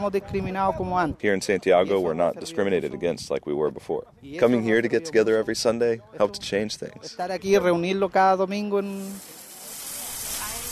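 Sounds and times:
speech: 0.0s - 9.4s
meat sizzling on a grill: 8.6s - 10.7s.

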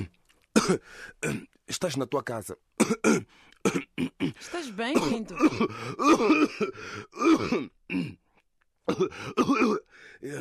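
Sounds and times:
person clearing throat: 0.0s - 1.5s, 2.8s - 4.4s, 5.0s - 8.2s, 8.9s - 10.4s
person coughing: 0.0s - 1.5s, 2.8s - 8.2s, 8.9s - 10.4s
speech: 0.7s - 8.2s, 8.9s - 10.4s.

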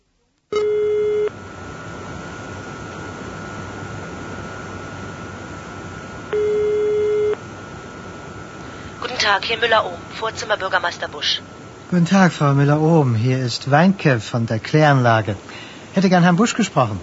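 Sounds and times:
steady hiss on a phone line: 0.0s - 17.0s
phone ringback tones through a phone line: 0.5s - 1.3s, 6.3s - 7.4s
speech: 9.2s - 17.0s.

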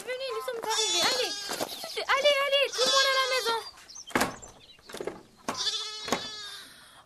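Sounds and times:
goats bleating: 0.3s - 3.7s, 5.5s - 6.7s.

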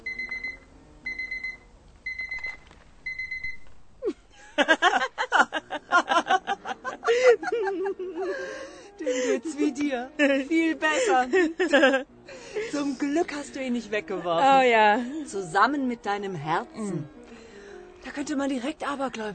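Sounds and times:
alarm clock ringing in short electronic bursts: 0.1s - 3.6s
several people laughing: 4.0s - 12.1s
speech: 4.6s - 4.9s, 9.9s - 12.1s, 12.9s - 17.2s, 18.1s - 19.3s.

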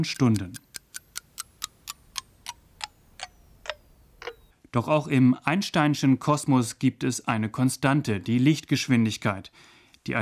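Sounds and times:
speech: 0.0s - 0.6s, 4.7s - 10.2s
clock ticking: 0.0s - 4.5s.

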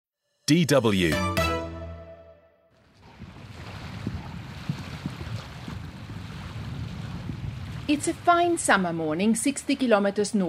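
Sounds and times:
sustained musical tone: 0.3s - 2.7s
speech: 0.5s - 1.4s, 7.9s - 10.4s
steady wind over open water: 2.8s - 10.4s
low rumbling churn of vintage boat: 2.9s - 10.4s
waves washing on open water: 3.0s - 10.4s.

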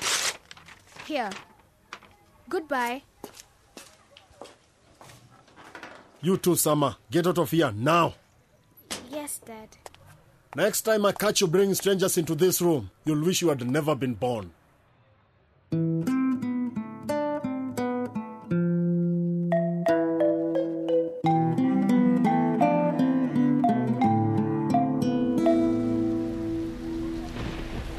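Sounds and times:
speech: 1.1s - 1.5s, 2.5s - 3.1s, 6.2s - 8.2s, 9.2s - 9.8s, 10.5s - 14.6s, 15.7s - 16.1s
tuneful passage of sustained musical notes: 15.8s - 27.6s
rain falling: 26.0s - 27.9s.

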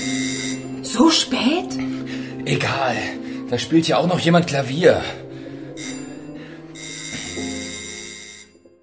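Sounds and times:
electric doorbell ringing: 0.0s - 1.2s, 5.8s - 8.7s
speech: 1.0s - 5.2s.

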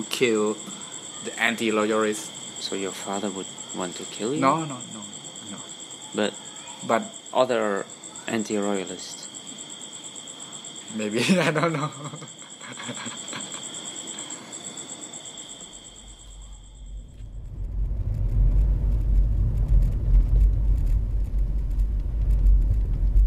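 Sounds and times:
speech: 0.0s - 9.2s, 10.9s - 13.2s
insects chirring: 0.0s - 23.2s
laughter: 11.0s - 14.5s
car driving on a road with low rumbling road noise: 17.0s - 23.2s.

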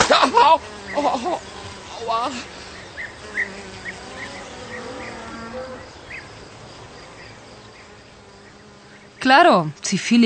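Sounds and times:
flies buzzing in the countryside: 0.0s - 10.2s
speech: 0.5s - 2.6s, 9.2s - 10.2s.

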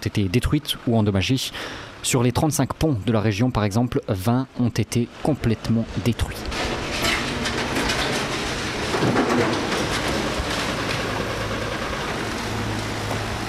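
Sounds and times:
speech: 0.0s - 7.1s, 9.0s - 9.7s
trucks and excavators engine drone clearing debris: 0.0s - 13.4s
scraping of excavators clearing debris: 6.4s - 13.3s
clanks and knocks of machinery clearing debris: 6.5s - 13.4s.

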